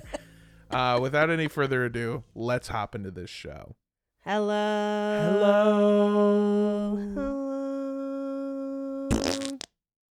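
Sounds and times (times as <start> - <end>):
speech: 0.7 - 7.4
fake fart noise: 9.1 - 9.7.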